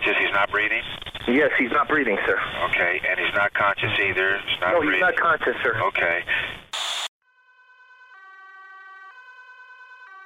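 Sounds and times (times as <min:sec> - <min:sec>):
speech: 0:00.4 - 0:06.5
ambulance siren wailing in a two-tone pattern: 0:07.3 - 0:10.2.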